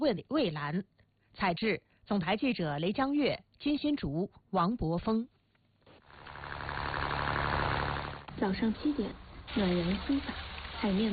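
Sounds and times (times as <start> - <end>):
speech: 0.0 - 5.3, 8.4 - 11.1
fishing boat motor starting up in a harbour: 6.1 - 11.1.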